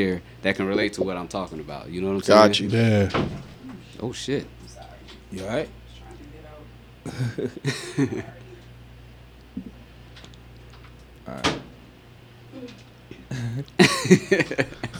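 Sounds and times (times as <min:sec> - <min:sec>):
speech: 0:00.0 - 0:04.6, 0:05.3 - 0:05.8, 0:07.1 - 0:08.4, 0:09.6 - 0:09.8, 0:11.3 - 0:11.6, 0:12.5 - 0:14.9
laughter: 0:00.0 - 0:08.8, 0:12.5 - 0:14.9
low steady hum: 0:00.0 - 0:14.9
harsh rough coughing: 0:02.4 - 0:04.0, 0:07.0 - 0:08.7, 0:12.6 - 0:14.9.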